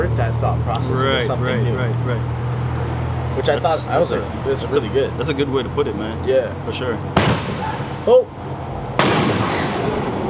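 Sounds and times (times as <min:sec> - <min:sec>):
speech: 0:00.0 - 0:02.4, 0:03.4 - 0:08.5
firework bang outside: 0:07.2 - 0:08.1, 0:09.0 - 0:10.2.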